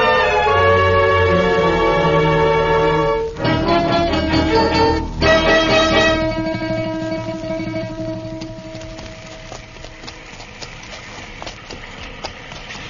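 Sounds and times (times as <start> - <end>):
sustained musical chord: 0.0 - 10.2
horses' hooves clip-clopping at a walking rhythm: 0.0 - 12.8.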